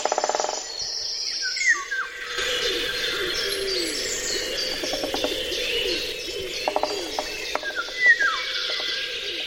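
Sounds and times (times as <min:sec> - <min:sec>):
cuckoo calling: 0:00.0 - 0:09.4
golden oriole singing: 0:00.0 - 0:09.4
steady insect-like hum: 0:00.0 - 0:09.4.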